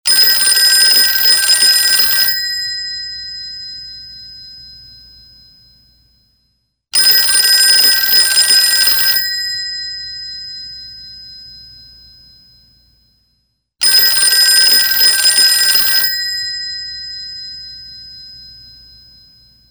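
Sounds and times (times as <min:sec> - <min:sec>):
old style telephone ringing: 0:00.1 - 0:03.8, 0:07.0 - 0:10.7, 0:13.8 - 0:17.9.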